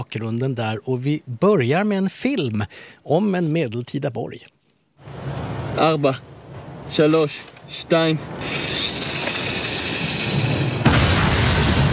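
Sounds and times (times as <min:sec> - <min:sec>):
speech: 0:00.0 - 0:05.2, 0:05.8 - 0:06.3, 0:06.9 - 0:08.7
explosion of bunkers at a medieval crusader fortress in a war film: 0:09.4 - 0:11.9.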